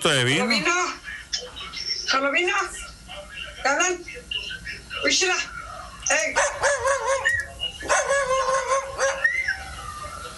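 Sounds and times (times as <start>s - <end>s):
speech: 0.0s - 2.8s, 3.6s - 4.4s, 5.0s - 8.4s
faint noise: 0.0s - 10.3s
dog giving loud drawn-out wavering barks and yowls: 6.4s - 10.1s.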